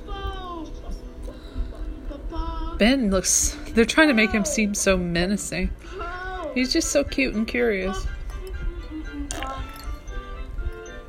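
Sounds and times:
faint music or TV sound: 0.0 - 11.0
speech: 2.8 - 6.0, 6.6 - 8.1
person gulping and swallowing water: 9.3 - 10.1.

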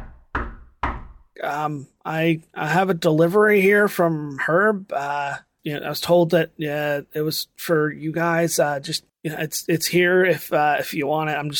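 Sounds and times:
gentle knocks on an ornate wooden front door: 0.0 - 1.4
speech: 1.4 - 11.5.

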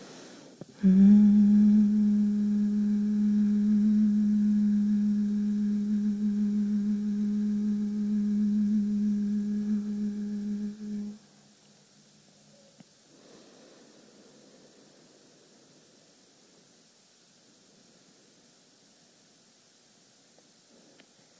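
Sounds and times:
breath: 0.0 - 0.9, 13.1 - 16.7, 20.7 - 21.3
person humming one low pitch in a guided humming exercise: 0.6 - 11.6.

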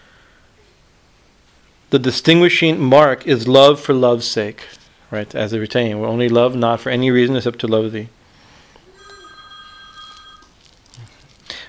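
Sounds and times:
speech: 1.9 - 8.2
mobile phone ringtone electronic chord: 8.9 - 10.8.

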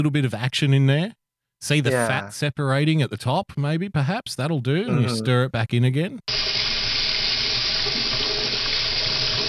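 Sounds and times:
speech: 0.0 - 6.5
kitchen tap running extremely hot water: 6.3 - 9.4.

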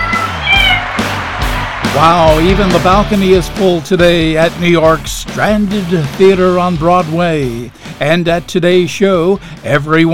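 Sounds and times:
cat meowing: 0.0 - 0.8
speech: 2.0 - 10.1.

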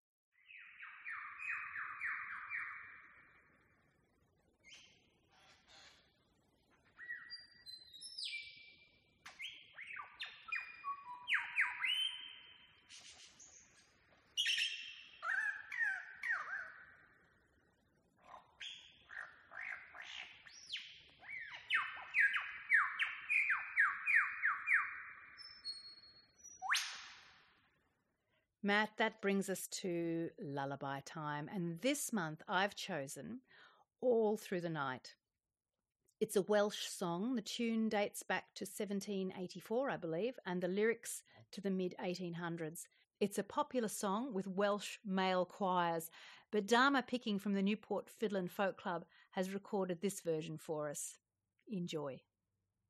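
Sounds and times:
male lyrebird singing: 0.4 - 3.4, 4.6 - 5.0, 6.9 - 13.8, 14.4 - 17.2, 18.3 - 26.9
speech: 28.6 - 35.2, 36.2 - 52.3.

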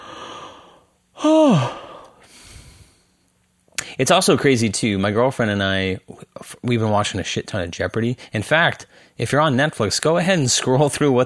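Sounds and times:
person yawning: 0.0 - 2.3
speech: 1.2 - 1.8, 4.0 - 11.2.

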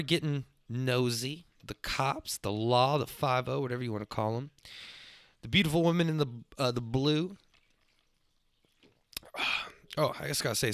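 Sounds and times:
speech: 0.0 - 7.4, 9.4 - 10.7
wet mouth sounds sipping bourbon: 7.5 - 10.0.

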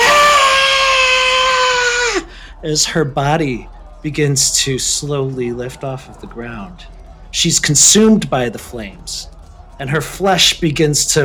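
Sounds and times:
girl screaming: 0.0 - 2.3
speech: 2.6 - 11.2.

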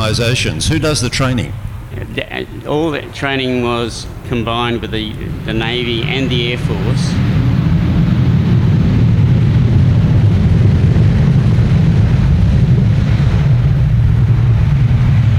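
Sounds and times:
airplane engine drone: 0.0 - 15.3
speech: 0.1 - 7.3.

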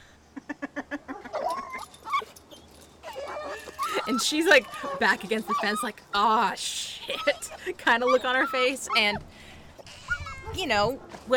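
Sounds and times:
several dogs whimpering and whining frantically: 1.1 - 6.4, 7.0 - 9.2, 9.9 - 10.7
speech: 4.2 - 9.4, 10.6 - 11.3.

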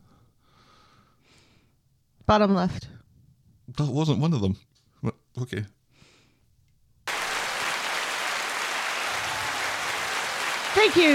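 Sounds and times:
speech: 2.3 - 3.0, 3.7 - 5.8, 10.8 - 11.1
dense applause of many clapping hands: 7.1 - 11.1.

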